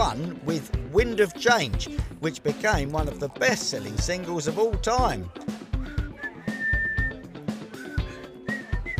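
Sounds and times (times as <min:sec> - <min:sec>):
backing music: 0:00.0 - 0:08.9
speech: 0:00.1 - 0:05.6
person whistling a slow tune: 0:05.8 - 0:08.9.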